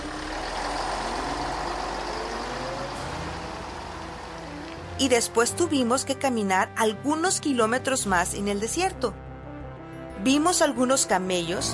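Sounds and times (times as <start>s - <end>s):
large vehicle engine rumbling: 0.0s - 6.3s
broadband road noise: 0.0s - 6.5s
speech: 5.0s - 9.2s, 10.2s - 11.7s.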